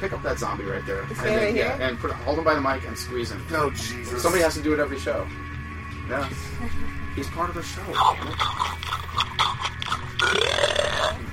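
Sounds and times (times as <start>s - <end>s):
speech: 0.0s - 5.5s, 6.1s - 9.3s
long loud burp: 8.0s - 11.3s.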